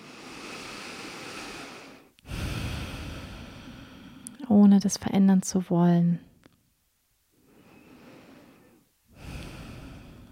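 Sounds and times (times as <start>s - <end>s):
deep breathing during a guided relaxation: 0.0s - 4.4s, 7.4s - 10.3s
speech: 4.5s - 6.3s.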